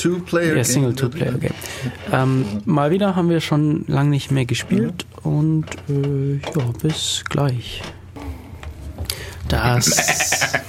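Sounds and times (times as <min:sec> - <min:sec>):
speech: 0:00.0 - 0:08.0, 0:09.5 - 0:10.6
person imitating a goat bleat: 0:09.8 - 0:10.6.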